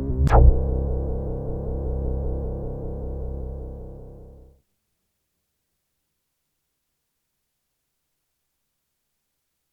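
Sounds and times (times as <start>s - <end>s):
Korg DW-8000 synthesizer factory patches: 0.2s - 4.5s.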